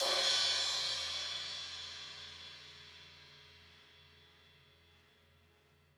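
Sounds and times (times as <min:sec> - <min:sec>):
crash cymbal drum sample: 0:00.0 - 0:04.1.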